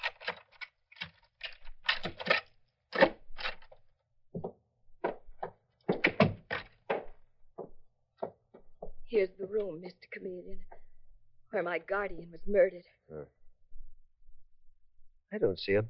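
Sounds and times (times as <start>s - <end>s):
house door being unlocked with a key and opened: 0.0s - 3.8s, 5.9s - 7.2s
speech: 9.2s - 10.8s, 11.5s - 13.4s, 15.3s - 15.8s.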